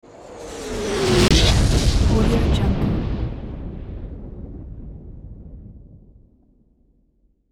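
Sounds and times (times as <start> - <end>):
explosion impact: 1.2 - 6.2.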